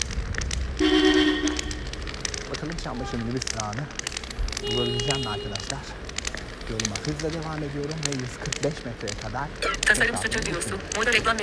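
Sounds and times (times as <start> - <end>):
steady street traffic rumble and hiss: 0.0 - 11.4
short car horn blast: 0.8 - 1.9, 4.6 - 5.7
speech: 2.6 - 6.1, 6.7 - 11.4.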